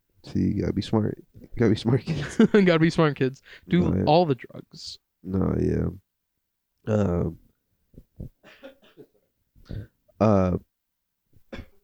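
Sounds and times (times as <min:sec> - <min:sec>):
speech: 0:00.4 - 0:06.0, 0:06.8 - 0:07.4, 0:09.7 - 0:10.7
throat clearing: 0:08.0 - 0:09.9, 0:11.5 - 0:11.8
person coughing away from the microphone: 0:08.2 - 0:09.9, 0:11.5 - 0:11.8.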